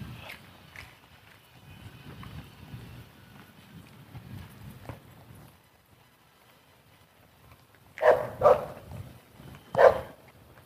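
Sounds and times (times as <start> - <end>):
dog barking outdoors: 8.0 - 8.9, 9.7 - 10.2.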